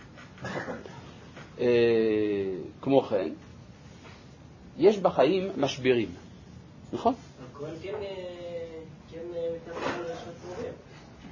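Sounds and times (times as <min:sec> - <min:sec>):
sneeze: 0:00.4 - 0:01.0
speech: 0:01.6 - 0:03.5, 0:04.8 - 0:06.2, 0:06.9 - 0:08.4.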